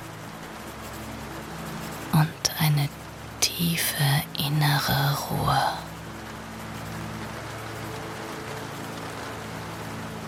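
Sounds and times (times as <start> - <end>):
steady rain spattering on a surface: 0.0 - 10.2
speech: 3.6 - 5.8.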